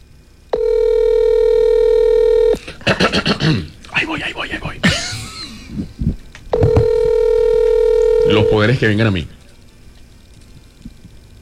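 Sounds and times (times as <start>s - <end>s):
telephone dialing tone while a number is dialed: 0.6s - 2.6s, 6.6s - 8.7s
speech: 3.2s - 4.8s, 8.4s - 9.4s.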